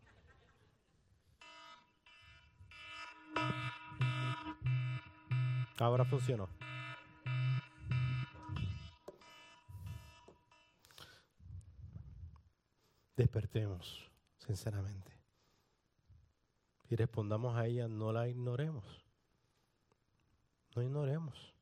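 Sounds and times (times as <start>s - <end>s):
electronic alarm buzzing during a sermon: 1.4s - 11.0s
speech: 5.8s - 6.6s, 13.3s - 15.2s, 16.9s - 19.0s, 20.8s - 21.6s.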